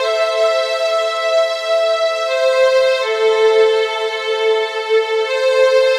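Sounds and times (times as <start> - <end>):
sweet strings: 0.0 - 5.9.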